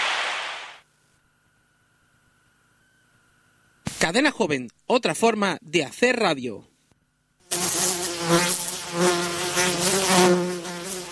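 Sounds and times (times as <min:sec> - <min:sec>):
speech: 0:04.0 - 0:06.7, 0:08.3 - 0:09.1
mosquito buzzing: 0:07.4 - 0:11.1.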